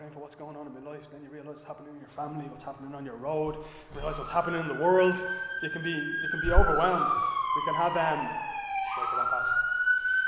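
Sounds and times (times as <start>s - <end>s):
speech: 0.3s - 8.5s
emergency vehicle siren wailing outside: 3.6s - 10.2s.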